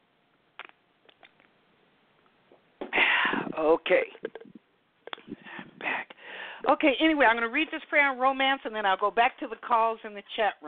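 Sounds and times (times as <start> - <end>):
speech: 3.6 - 4.4, 6.7 - 10.6
sipping water: 4.2 - 6.0.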